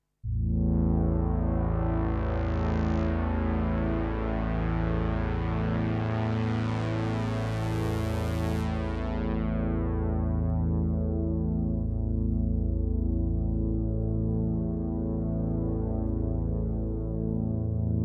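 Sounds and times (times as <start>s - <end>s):
analog-style synthesizer with saw, pulse and PWM waves: 0.2s - 18.0s.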